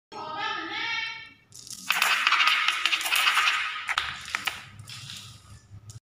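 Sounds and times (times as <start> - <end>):
marbles rolling: 1.6 - 5.4.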